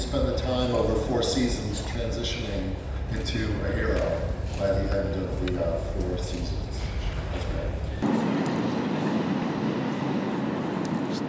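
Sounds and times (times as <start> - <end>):
speech: 0.1 - 6.8
train passing by: 6.7 - 11.2.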